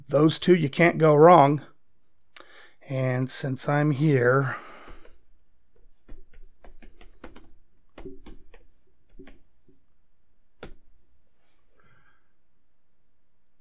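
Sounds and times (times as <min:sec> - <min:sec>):
speech: 0:00.1 - 0:01.7, 0:02.9 - 0:04.8
typing on a computer keyboard: 0:04.8 - 0:09.5, 0:10.6 - 0:10.8.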